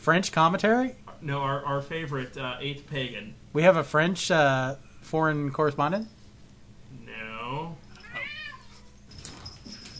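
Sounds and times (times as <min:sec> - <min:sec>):
speech: 0:00.0 - 0:06.2
cats fighting and yowling: 0:07.4 - 0:09.0.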